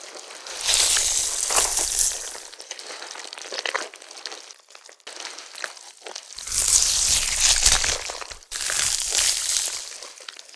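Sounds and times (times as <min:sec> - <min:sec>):
worm idling: 0:00.5 - 0:02.5, 0:06.4 - 0:10.1.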